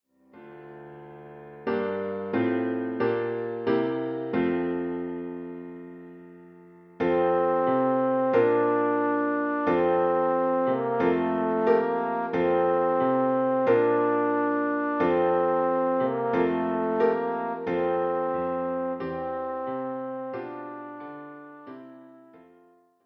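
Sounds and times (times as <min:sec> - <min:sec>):
German Christmas carol: 0:00.4 - 0:23.0.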